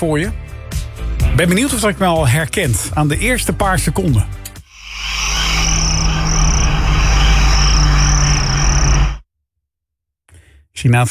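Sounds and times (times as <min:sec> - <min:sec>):
speech: 0:00.0 - 0:00.4, 0:01.4 - 0:04.4, 0:10.8 - 0:11.0
crickets chirping in a dense high-pitched chorus: 0:04.7 - 0:09.2.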